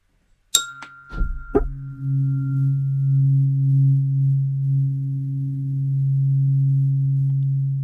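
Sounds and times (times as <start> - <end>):
Om-tuned meditation tone at 136.1 hertz: 0.0 - 7.8
bright metallic clinks: 0.5 - 2.8.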